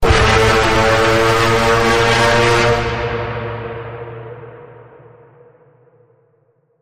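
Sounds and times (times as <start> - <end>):
pitch bend note in A: 0.0 - 4.1.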